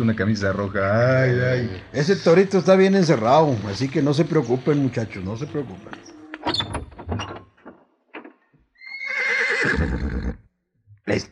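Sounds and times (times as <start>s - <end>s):
jet-black horse neighing: 0.0s - 6.3s, 8.8s - 10.5s
speech: 0.0s - 6.7s.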